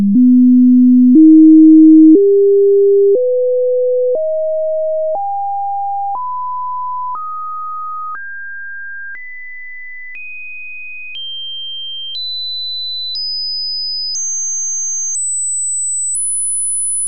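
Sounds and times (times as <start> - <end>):
processed multisine tone: 0.2 - 8.2, 14.2 - 17.0.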